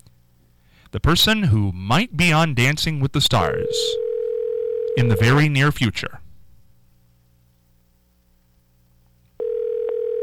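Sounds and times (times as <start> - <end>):
low hum: 0.0 - 10.2
speech: 0.9 - 4.0, 5.0 - 6.2
electronic telephone ringing tone of an outgoing call: 3.6 - 5.4, 9.4 - 10.2.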